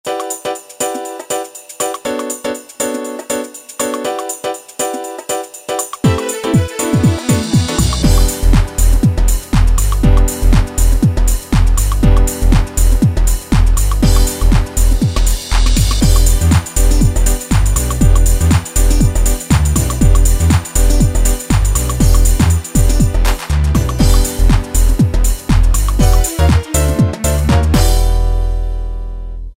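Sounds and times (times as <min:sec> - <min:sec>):
Hip House style beat on a Yamaha DJX: 0:00.1 - 0:28.6.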